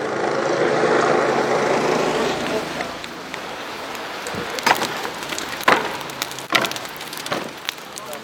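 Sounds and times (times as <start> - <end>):
large outdoor bonfire beside a river roaring and crackling: 0.0 - 8.2
water-ruined furniture and planks snapping and thudding on a bonfire: 2.8 - 8.2.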